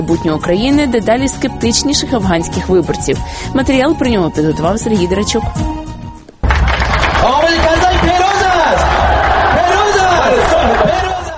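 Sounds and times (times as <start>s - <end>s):
speech: 0.0s - 5.8s
people clapping: 6.4s - 11.3s
crowd shouting in rhythmic chant-like bursts at an election rally: 8.4s - 11.3s.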